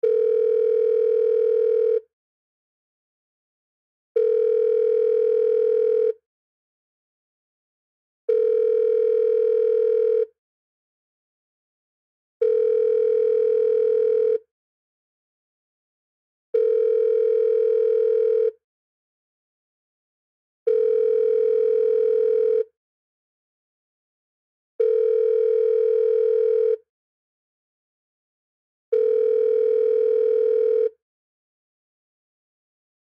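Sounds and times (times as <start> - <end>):
office telephone speakerphone ringing: 0.0 - 2.0, 4.2 - 6.2, 8.3 - 10.3, 12.4 - 14.4, 16.6 - 18.6, 20.7 - 22.7, 24.8 - 26.8, 28.9 - 31.0.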